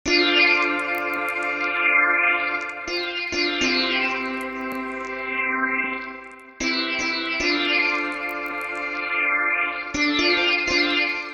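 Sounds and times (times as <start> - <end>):
synth lead: 0.1 - 11.3.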